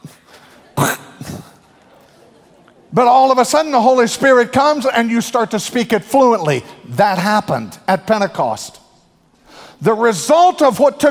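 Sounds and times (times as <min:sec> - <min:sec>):
person imitating throat clearing to mock spoken German: 0:00.8 - 0:01.5
speech: 0:03.0 - 0:08.8, 0:09.8 - 0:11.0.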